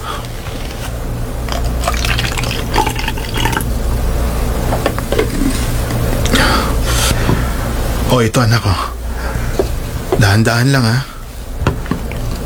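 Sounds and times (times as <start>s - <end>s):
steady low electrical hum: 0.0s - 12.4s
water poured into a glass: 1.5s - 4.0s
speech: 8.1s - 8.9s, 10.2s - 11.1s.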